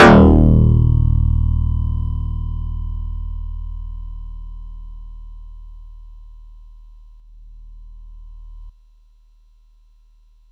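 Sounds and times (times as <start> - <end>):
Yamaha YX81Z synth electric bass note D-sharp 2: 0.0 - 4.6.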